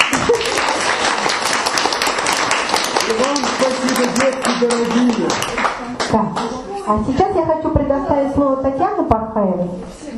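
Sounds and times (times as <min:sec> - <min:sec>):
crowd clapping at a New Year's celebration: 0:00.0 - 0:06.6
speech: 0:04.2 - 0:10.0.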